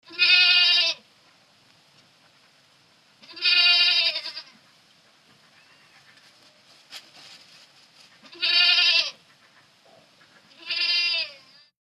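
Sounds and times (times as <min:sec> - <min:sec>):
goat bleating: 0:00.0 - 0:01.0, 0:03.2 - 0:04.6, 0:08.2 - 0:09.2, 0:10.5 - 0:11.7.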